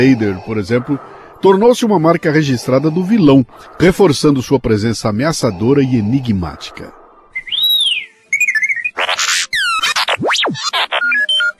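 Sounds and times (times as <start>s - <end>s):
speech: 0.0s - 7.0s
electronic whistles, chirps, warbling trills and swooping tones: 7.3s - 11.5s
sci-fi robot droid beeping: 8.6s - 11.5s.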